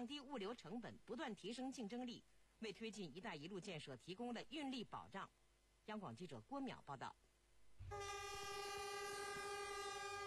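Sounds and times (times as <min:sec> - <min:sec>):
speech: 0:00.0 - 0:07.2, 0:07.8 - 0:08.2
horn of a departing freight train loaded with small goods: 0:07.8 - 0:10.2.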